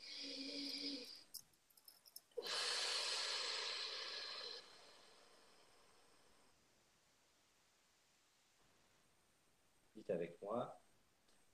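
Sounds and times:
deep breaths during a guided healing meditation: 0.0s - 1.2s, 2.4s - 6.6s
speech: 10.1s - 10.8s.

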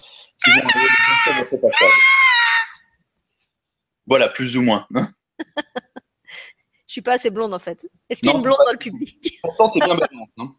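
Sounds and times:
laughter: 0.4s - 2.0s, 8.2s - 10.4s
person imitating terrified screams of a horror-film victim: 0.4s - 2.8s, 9.5s - 10.3s
speech: 0.5s - 2.1s, 4.1s - 5.9s, 6.9s - 10.5s.

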